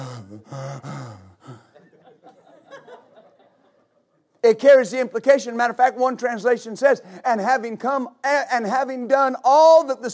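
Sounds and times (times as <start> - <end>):
man's voice imitating heavy breathing with gasping exhales and panting: 0.0 - 1.8
speech: 0.4 - 1.3, 4.5 - 10.1
laughter: 1.4 - 4.2.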